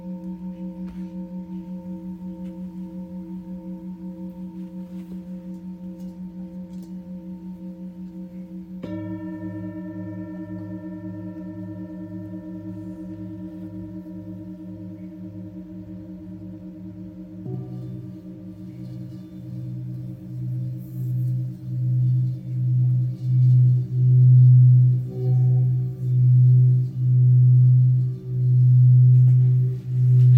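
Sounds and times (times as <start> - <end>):
Tibetan singing bowl ringing: 0.0 - 30.3.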